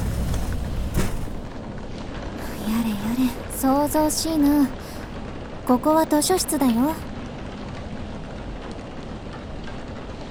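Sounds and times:
heavy steady downpour of rain: 0.0s - 10.2s
speech: 3.2s - 4.8s, 5.7s - 7.1s.

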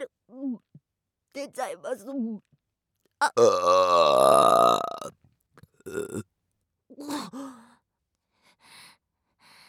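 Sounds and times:
speech: 1.4s - 2.5s, 3.2s - 5.2s, 5.9s - 6.3s
long loud deep burp: 3.3s - 5.1s, 5.9s - 6.2s.

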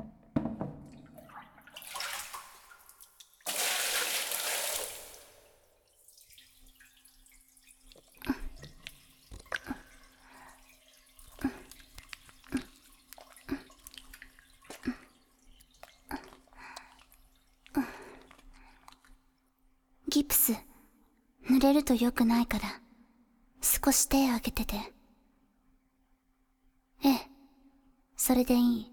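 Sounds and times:
water running and splashing while washing someone's back: 0.8s - 17.4s
water dripping: 0.8s - 19.5s
speech: 21.7s - 22.8s, 23.9s - 25.0s, 28.3s - 28.9s.

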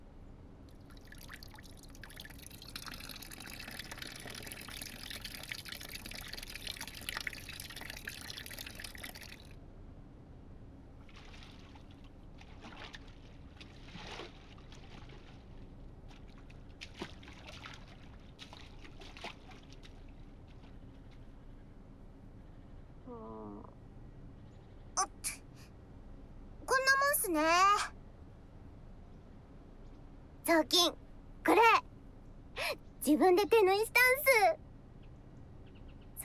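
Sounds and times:
hot water pouring: 0.9s - 9.5s
speech: 27.3s - 27.9s, 30.5s - 31.8s, 33.0s - 34.6s.

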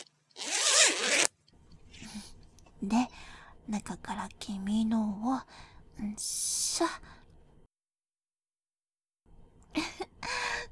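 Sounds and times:
trouser zipper being pulled open: 0.0s - 1.4s
speech: 2.8s - 7.2s.

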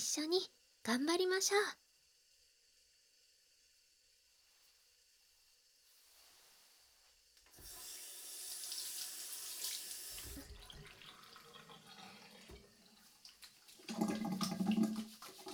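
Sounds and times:
speech: 0.0s - 1.8s
tap water running: 7.4s - 15.5s
hands being washed with wet splashing and rubbing: 13.0s - 15.5s.

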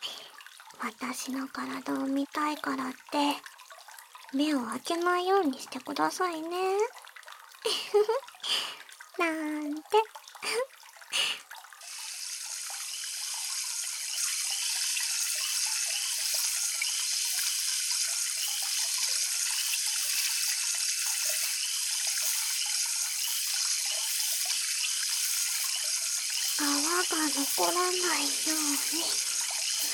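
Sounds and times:
tap water running to rinse someone off: 0.0s - 29.9s
speech: 0.8s - 3.5s, 4.3s - 7.0s, 7.6s - 10.7s, 27.6s - 29.3s
water splashes: 9.0s - 29.9s.

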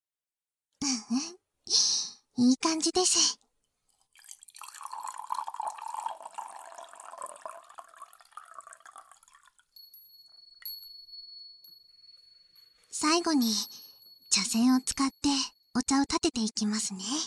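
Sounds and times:
speech: 1.1s - 3.4s, 13.2s - 13.8s, 14.4s - 17.2s
hot water pouring into a tea bowl: 4.1s - 9.8s
faint high ringing clinks: 4.9s - 15.3s.

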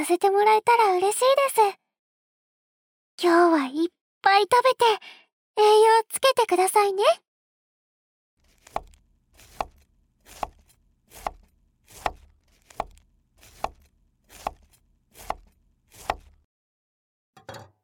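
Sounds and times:
speech: 0.0s - 1.8s, 3.2s - 7.2s
knife chopping cabbage: 8.4s - 16.5s.

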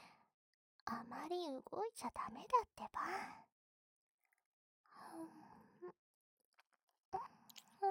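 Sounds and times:
speech: 0.9s - 3.5s, 5.0s - 6.0s
person chewing home-cooked food: 7.5s - 7.7s.

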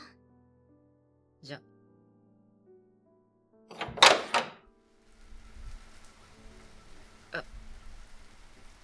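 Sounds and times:
speech: 1.5s - 1.7s
heavy rain pouring down: 5.1s - 8.8s.

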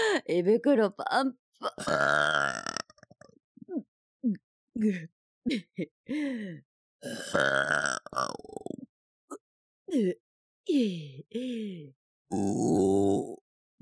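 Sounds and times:
speech: 0.2s - 2.7s, 3.7s - 8.8s, 9.9s - 13.4s
woman belching after a full meal: 1.6s - 2.9s, 7.0s - 8.4s.

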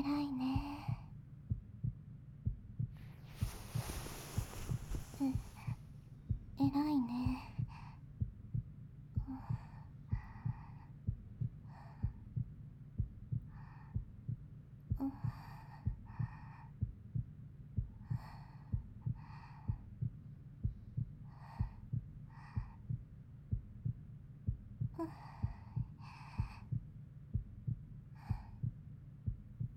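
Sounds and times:
human heartbeat: 0.0s - 29.7s
faint breathy rustles: 3.0s - 5.8s
speech: 5.2s - 5.5s.

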